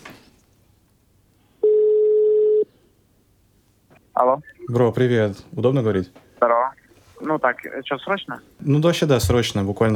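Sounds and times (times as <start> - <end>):
phone ringback tone as a call is placed: 1.6 - 2.7
speech: 4.2 - 6.8, 7.4 - 9.9.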